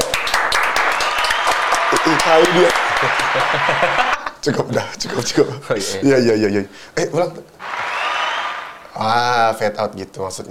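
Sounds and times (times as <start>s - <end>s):
several people clapping hands: 0.0s - 4.4s, 7.6s - 9.1s
laughter: 1.9s - 5.6s
speech: 2.0s - 7.6s, 9.0s - 10.4s.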